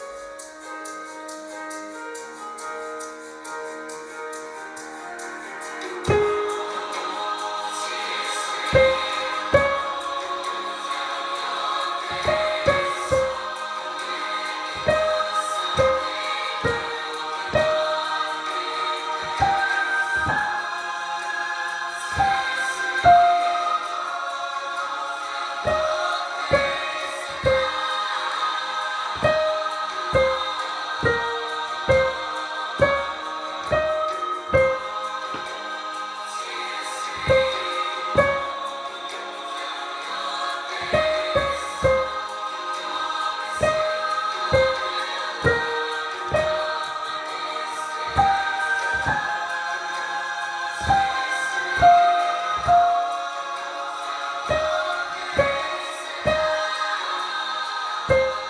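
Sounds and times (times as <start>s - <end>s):
soprano voice singing: 5.2s - 58.4s.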